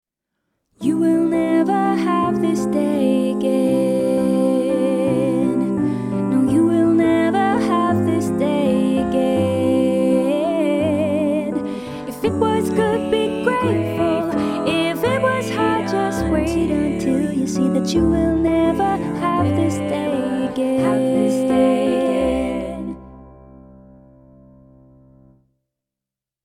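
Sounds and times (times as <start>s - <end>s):
SATB choir singing: 0.8s - 23.2s
piano: 0.8s - 25.5s.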